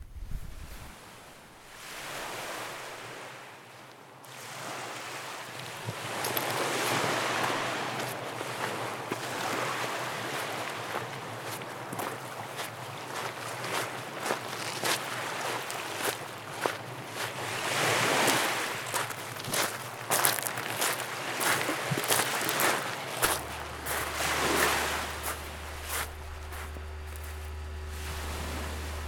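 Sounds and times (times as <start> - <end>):
wind rumble: 0.0 - 1.0, 21.4 - 29.0
waves washing onto an empty lakeshore beach under power lines: 1.7 - 29.0.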